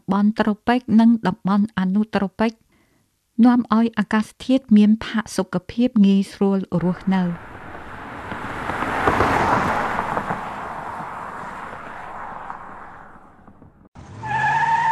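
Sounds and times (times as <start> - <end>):
speech: 0.1 - 2.6, 3.4 - 7.5
car approaching from afar: 6.8 - 14.9.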